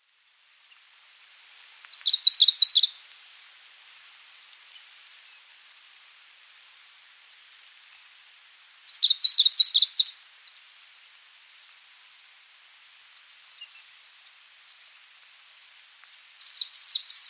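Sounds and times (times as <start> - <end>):
thrush nightingale: 0.7 - 3.4, 8.9 - 10.7, 13.2 - 17.2.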